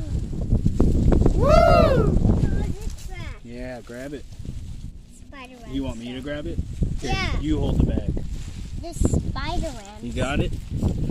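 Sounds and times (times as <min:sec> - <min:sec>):
wind buffeting the microphone outdoors: 0:00.0 - 0:11.0
rising-and-falling tonal cry: 0:01.4 - 0:02.2
speech: 0:03.8 - 0:04.6, 0:05.3 - 0:10.9.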